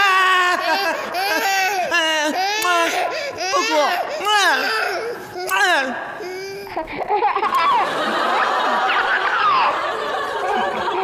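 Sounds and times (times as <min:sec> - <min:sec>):
laughter: 0:00.0 - 0:04.7, 0:06.3 - 0:11.0
baby crying in loud drawn-out wails: 0:00.0 - 0:07.0
adult talking: 0:02.0 - 0:06.6, 0:08.4 - 0:09.9.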